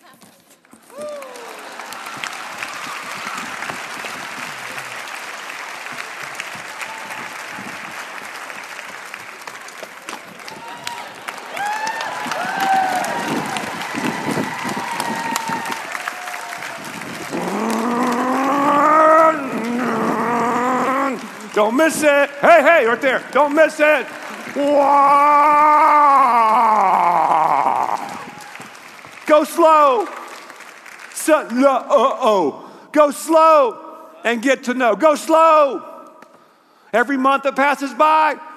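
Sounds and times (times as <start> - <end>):
large crowd applauding: 0.7 - 32.2
crowd cheering, whooping and shouting: 0.8 - 22.2, 23.0 - 28.9
speech: 21.6 - 26.7, 29.3 - 30.1, 31.3 - 35.9, 36.9 - 38.5.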